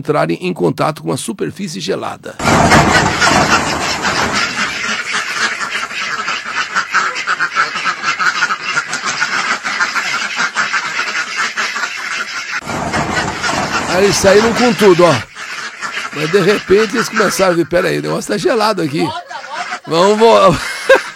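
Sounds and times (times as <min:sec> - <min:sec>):
speech: 0:00.0 - 0:04.5, 0:14.0 - 0:15.3, 0:16.2 - 0:19.2, 0:19.9 - 0:21.0
dense flock of ducks quacking leaving a barn: 0:02.4 - 0:21.1
laughter: 0:13.8 - 0:15.3, 0:16.1 - 0:21.1.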